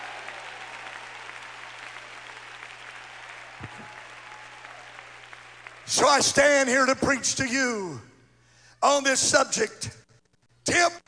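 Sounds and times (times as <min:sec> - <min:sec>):
crowd of people applauding in a large room: 0:00.0 - 0:06.4
speech: 0:03.6 - 0:04.0, 0:05.9 - 0:08.1, 0:08.8 - 0:10.0.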